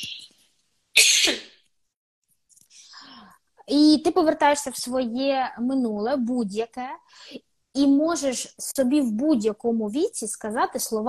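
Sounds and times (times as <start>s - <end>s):
person coughing: 1.0s - 1.6s
speech: 3.7s - 11.0s.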